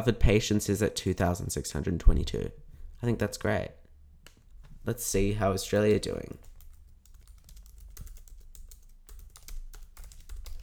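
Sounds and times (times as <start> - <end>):
speech: 0.0 - 3.8, 4.8 - 6.5
typing on a computer keyboard: 5.7 - 10.6.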